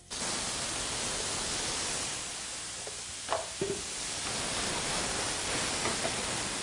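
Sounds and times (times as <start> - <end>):
tomatoes sizzling in a hot sauté pan with sautéed garlic: 0.0 - 6.6.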